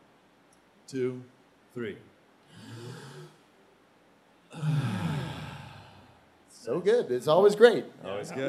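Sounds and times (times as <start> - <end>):
speech: 0.9 - 2.8, 6.6 - 8.4
person exhaling a sigh-like breath through the mouth: 2.5 - 3.4, 4.5 - 6.2
person taking a soft deep breath in: 2.5 - 3.4, 4.5 - 6.2.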